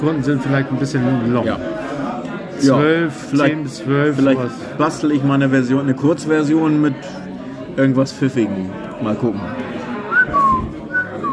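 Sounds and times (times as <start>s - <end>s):
speech: 0.0s - 1.9s, 2.6s - 9.6s
soft murmur: 0.0s - 11.3s
person whistling short clear tones: 10.1s - 11.3s.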